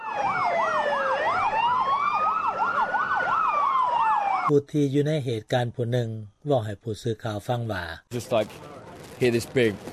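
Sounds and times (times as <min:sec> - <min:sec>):
ambulance siren wailing at an emergency scene at a train station: 0:00.0 - 0:04.5
speech: 0:04.5 - 0:09.9.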